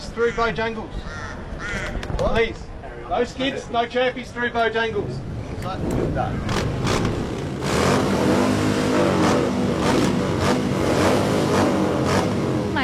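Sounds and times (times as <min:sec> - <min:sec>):
speech: 0:00.2 - 0:06.7
over ninety motorcycles revving at a bike gathering at a pub in Alice Springs: 0:04.9 - 0:12.8.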